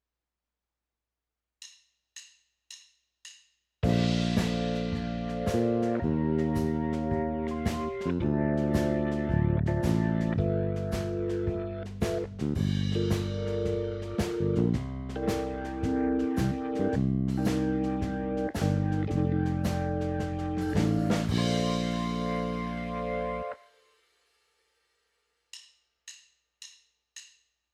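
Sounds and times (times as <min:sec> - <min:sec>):
eight-bar rhythm phrase: 0:03.8 - 0:23.5.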